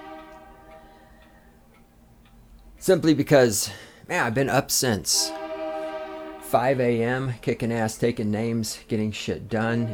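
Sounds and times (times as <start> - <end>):
faint sustained train horn: 0.0 - 1.6, 5.1 - 7.2, 9.6 - 9.9
train passing: 0.0 - 1.8, 2.7 - 7.9
speech: 2.8 - 5.4, 6.5 - 9.9.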